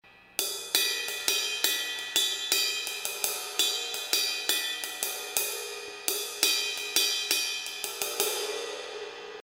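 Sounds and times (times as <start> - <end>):
uptown ride cymbal bell pattern: 0.1 - 9.4.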